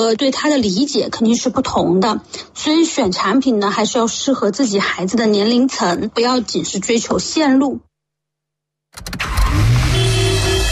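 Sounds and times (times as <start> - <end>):
speech: 0.0 - 7.9
car engine turning over and revving: 9.0 - 10.7.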